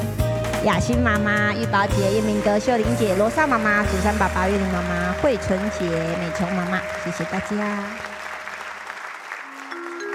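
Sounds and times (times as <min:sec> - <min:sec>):
speech: 0:00.6 - 0:08.1
audience applause: 0:02.4 - 0:10.1.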